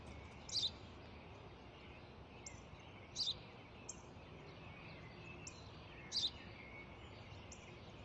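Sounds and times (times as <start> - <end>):
low hiss: 0.0 - 8.0
sparrow chirping: 0.0 - 8.0.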